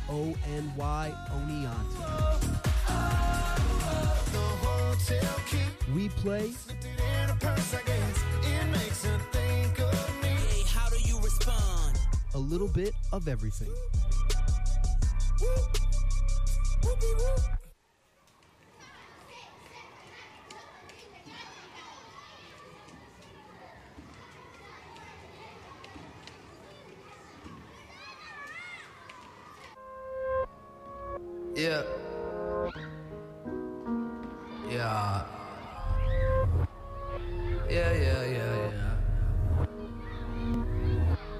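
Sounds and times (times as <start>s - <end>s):
music: 0.0s - 17.7s, 29.8s - 41.3s
speech: 0.1s - 3.2s, 3.9s - 7.8s, 12.5s - 14.1s, 15.4s - 15.8s, 16.8s - 17.6s
many children shrieking, calling and chattering on a playground: 18.4s - 29.8s, 32.5s - 33.2s, 34.2s - 38.5s, 39.7s - 41.3s.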